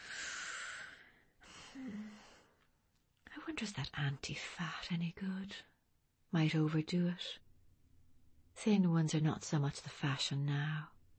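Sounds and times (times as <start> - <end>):
deep breathing from someone doing breathing exercises: 0.0 - 2.6
speech: 1.8 - 2.0, 3.5 - 5.7, 6.3 - 7.4, 8.6 - 11.0.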